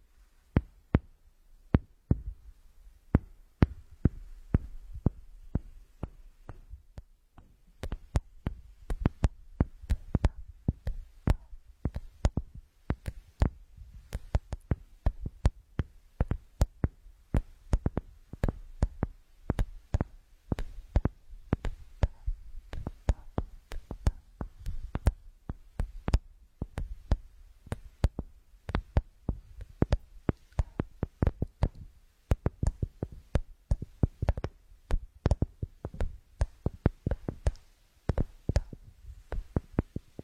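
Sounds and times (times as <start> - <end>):
faint low hum: 0.0 - 40.2
crisp tapping clicks with a bright snap: 3.1 - 40.2.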